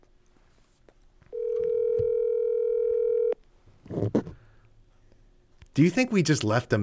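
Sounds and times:
telephone ringback tone while calling someone: 0:01.3 - 0:03.4
speech: 0:05.8 - 0:06.8.

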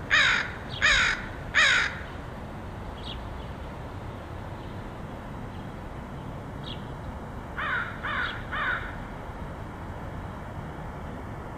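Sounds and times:
steady low outdoor hum in Portland: 0:00.0 - 0:11.5
crow giving harsh caws: 0:00.1 - 0:02.1, 0:07.6 - 0:09.0.

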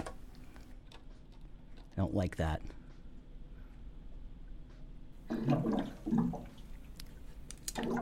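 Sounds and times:
speech: 0:02.2 - 0:02.8
water gurgling and sloshing: 0:05.2 - 0:08.0.

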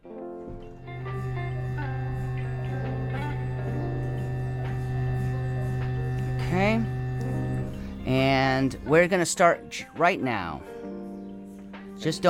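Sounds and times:
faint tonal whines: 0:00.5 - 0:09.0
large MRI machine powering up with deep electrical hum: 0:00.5 - 0:09.0
speech: 0:06.5 - 0:07.0, 0:08.1 - 0:10.7, 0:12.0 - 0:12.2.

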